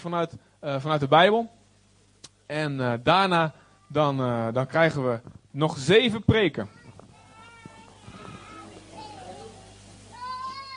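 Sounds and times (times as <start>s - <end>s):
speech: 0.0s - 1.6s, 2.5s - 6.8s
murmur of voices in a large room: 6.6s - 10.7s.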